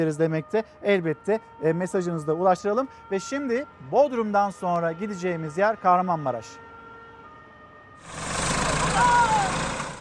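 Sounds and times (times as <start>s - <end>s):
speech: 0.0s - 6.6s, 9.0s - 9.6s
tractor engine running roughly on rough farmland in Kahramanmaraş Turkey: 8.0s - 10.0s.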